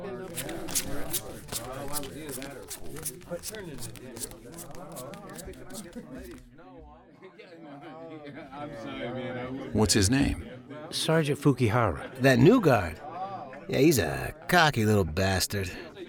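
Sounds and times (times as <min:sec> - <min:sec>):
playing cards shuffled and dealt at a card game in a camp barracks: 0:00.0 - 0:06.7
speech: 0:02.0 - 0:13.1, 0:13.7 - 0:16.0.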